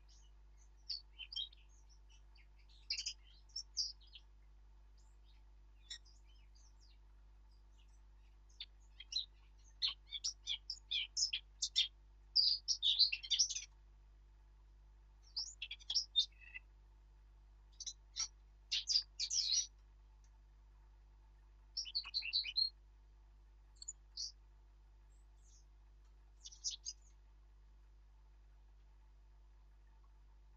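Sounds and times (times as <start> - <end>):
Eurasian blackcap Sylvia atricapilla song: 0.0 - 13.8, 15.2 - 16.7, 17.7 - 19.8, 21.7 - 22.8, 23.8 - 24.4, 25.0 - 25.8, 26.4 - 27.2.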